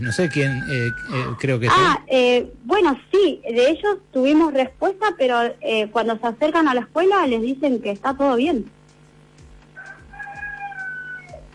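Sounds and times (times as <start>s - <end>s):
rooster crowing: 0.0s - 1.9s, 9.8s - 11.5s
speech: 0.0s - 8.8s.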